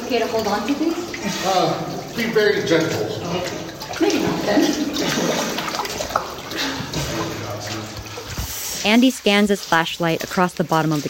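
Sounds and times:
water splashing from people swimming in a cave: 0:00.0 - 0:11.0
speech: 0:00.1 - 0:05.6, 0:08.8 - 0:11.0.

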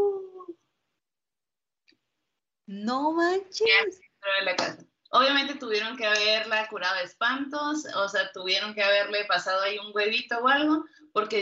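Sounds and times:
person imitating a howl with their voice: 0:00.0 - 0:00.6
speech: 0:02.7 - 0:11.4.

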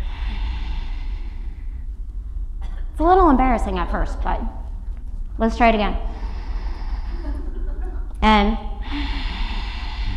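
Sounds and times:
breathy exhale through the throat with mouth closed during a breathing exercise: 0:00.0 - 0:02.0, 0:06.0 - 0:07.6, 0:08.7 - 0:10.1
speech: 0:03.0 - 0:04.6, 0:05.4 - 0:06.1, 0:08.2 - 0:08.7
laughter: 0:07.1 - 0:08.2.

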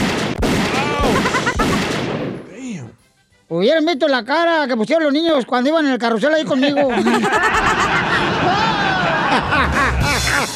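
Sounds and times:
gunshots fired at a horse with a broken leg: 0:00.0 - 0:02.4
laughter: 0:00.8 - 0:01.8, 0:06.3 - 0:10.5
speech: 0:03.5 - 0:07.9.

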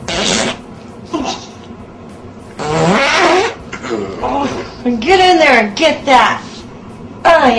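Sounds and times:
woman's loud drawn-out fart with buzzy wavering pitch: 0:00.0 - 0:00.6, 0:02.6 - 0:04.8
speech: 0:03.9 - 0:06.4, 0:07.4 - 0:07.5.

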